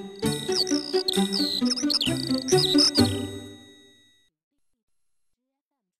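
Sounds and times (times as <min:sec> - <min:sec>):
bright high bird chirps and tweets: 0:00.0 - 0:03.3.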